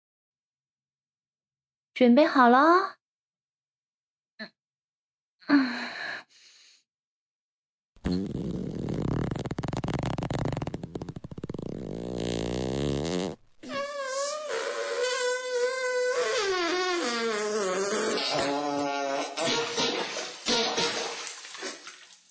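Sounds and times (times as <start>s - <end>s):
speech: 2.0s - 3.0s, 5.5s - 6.0s
long loud fart in a toilet: 8.0s - 21.3s.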